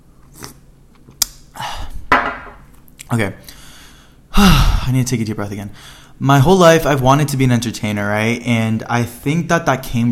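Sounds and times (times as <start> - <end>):
person sipping tea with a soft airy slurp: 0.2 - 0.6
speech: 3.1 - 3.5, 4.4 - 10.0.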